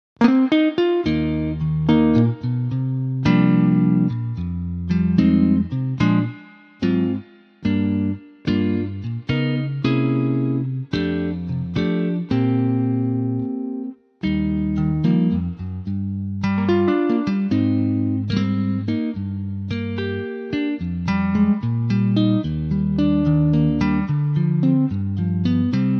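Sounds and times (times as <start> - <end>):
electric guitar: 0.2 - 25.9.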